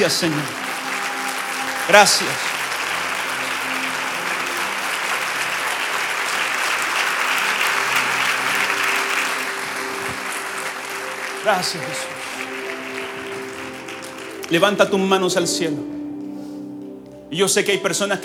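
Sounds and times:
speech: 0.0s - 0.6s, 1.9s - 2.5s, 11.4s - 12.1s, 14.5s - 16.0s, 17.3s - 18.2s
audience applauding loudly: 0.0s - 17.8s.

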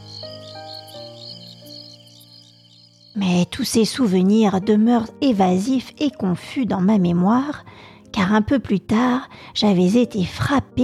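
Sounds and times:
cicadas singing: 0.0s - 4.6s
speech: 3.2s - 10.8s.

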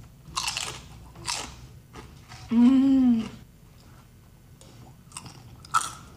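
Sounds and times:
crunchy bites into a fried cream cheese dragon: 0.3s - 2.1s, 5.1s - 6.1s
person humming with enjoyment: 2.5s - 3.4s.

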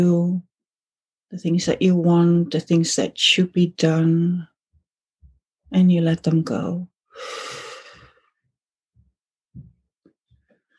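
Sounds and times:
speech: 0.0s - 0.5s, 1.3s - 4.5s, 5.7s - 7.6s
slow deep breath during a guided meditation: 7.1s - 8.4s.

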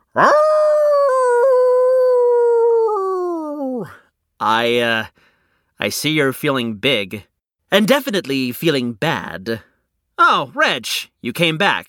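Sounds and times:
person howling like a wolf: 0.1s - 4.0s
speech: 0.2s - 0.4s, 4.6s - 5.2s, 5.8s - 11.8s.

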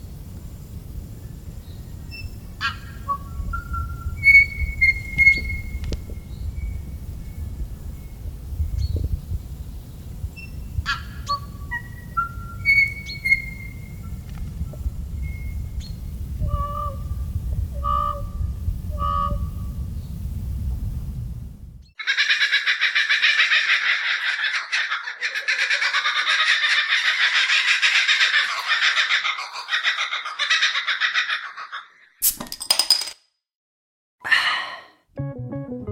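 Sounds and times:
low outdoor rumble: 0.0s - 21.9s
New Zealand bird calls: 1.7s - 7.4s, 10.4s - 14.2s, 17.8s - 18.3s, 18.9s - 19.6s, 21.9s - 32.2s.

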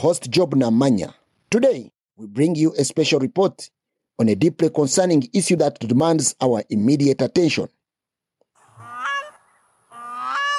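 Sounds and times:
speech: 0.0s - 7.8s
grey crowned crane honking calls: 8.6s - 10.5s.

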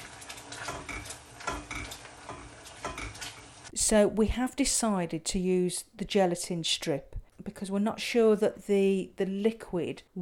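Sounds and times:
spoon stirring cherries in a pot: 0.0s - 3.7s
speech: 3.9s - 10.1s.

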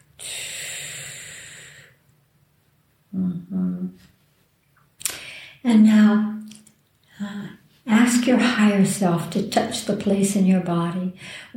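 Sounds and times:
slow long breath during a relaxation exercise: 0.2s - 2.0s, 5.1s - 5.6s, 11.2s - 11.5s
speech: 5.6s - 6.3s, 8.1s - 11.5s.

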